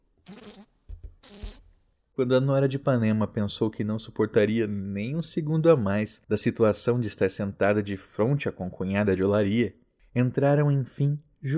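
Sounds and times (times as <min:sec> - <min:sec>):
fly buzzing: 0:00.2 - 0:01.6
speech: 0:02.2 - 0:11.5.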